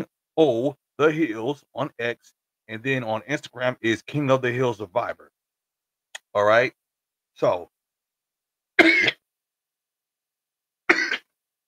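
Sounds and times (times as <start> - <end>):
speech: 0.0 - 5.4, 6.3 - 6.8, 7.4 - 7.8, 8.8 - 9.2
throat clearing: 10.9 - 11.2.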